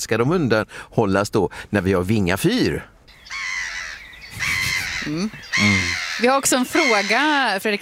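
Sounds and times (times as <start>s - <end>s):
speech: 0.0s - 2.9s, 4.4s - 7.8s
gull calling in Gothenburg: 3.1s - 7.8s.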